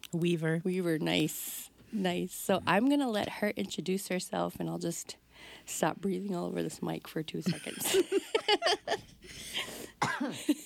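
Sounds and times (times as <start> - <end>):
speech: 0.1 - 10.6
person coughing: 9.6 - 10.6.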